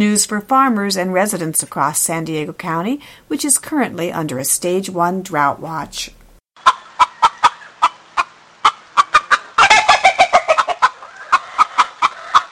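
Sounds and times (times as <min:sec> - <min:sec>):
speech: 0:00.0 - 0:06.2
chickens clucking: 0:06.6 - 0:12.5.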